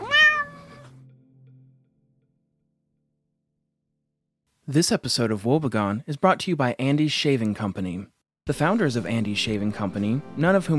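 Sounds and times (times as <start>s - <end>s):
small cat meowing loudly: 0.0s - 1.0s
speech: 4.7s - 10.7s.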